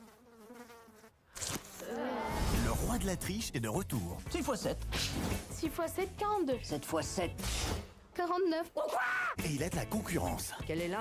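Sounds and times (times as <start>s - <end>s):
fly buzzing: 0.0s - 2.4s
speech: 2.8s - 10.9s.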